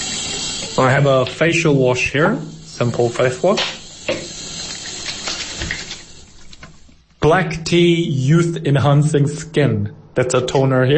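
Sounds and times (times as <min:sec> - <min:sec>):
warm water running from a tap: 0:00.0 - 0:07.0
speech: 0:00.8 - 0:03.8, 0:07.3 - 0:10.9.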